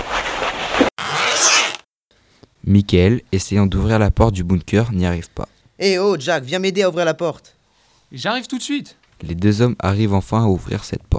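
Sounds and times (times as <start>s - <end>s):
zipper pulled on an anti-radiation suit being put on: 0.0s - 1.9s
speech: 2.7s - 11.1s.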